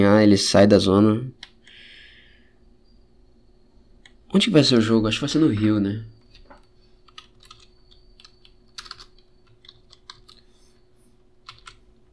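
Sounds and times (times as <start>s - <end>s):
faint steady hum: 0.0s - 12.1s
speech: 0.2s - 1.4s, 4.3s - 6.1s
typing on a computer keyboard with one hand: 7.0s - 10.4s, 11.4s - 11.8s.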